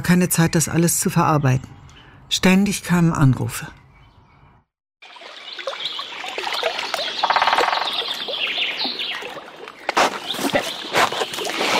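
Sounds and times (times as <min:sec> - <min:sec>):
speech: 0:00.0 - 0:03.8
forest chorus of chirping birds: 0:00.0 - 0:11.7
woodpecker tapping: 0:07.0 - 0:08.6.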